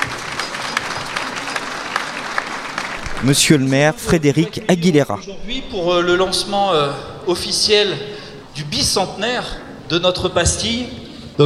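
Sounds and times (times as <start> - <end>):
audience in Vichy applauding costumed performers: 0.0 - 5.0
speech: 3.2 - 11.4.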